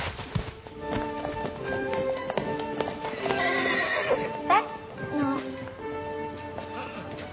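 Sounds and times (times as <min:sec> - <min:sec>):
pony hooves clip-clopping: 0:00.0 - 0:07.3
teaser pony whinnying at a stud breeding shed: 0:03.0 - 0:04.4.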